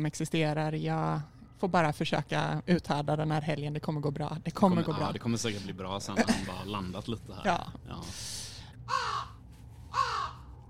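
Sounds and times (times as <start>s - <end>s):
speech: 0.0s - 9.1s
low steady hum: 0.0s - 10.6s
crow cawing: 8.9s - 10.6s.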